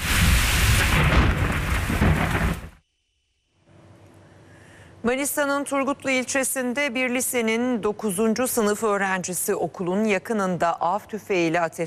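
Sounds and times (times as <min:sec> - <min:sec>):
dense heavy rainfall in a nighttime thunderstorm over a capital city: 0:00.0 - 0:02.8
rolling thunder in a nighttime thunderstorm over a capital city: 0:00.0 - 0:02.8
speech: 0:05.1 - 0:11.8.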